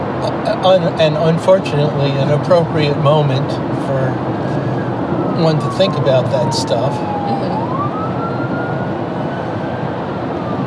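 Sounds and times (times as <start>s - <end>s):
rumbling street traffic: 0.0s - 10.6s
speech: 0.2s - 4.4s, 5.4s - 7.4s
police siren wailing: 4.3s - 10.6s.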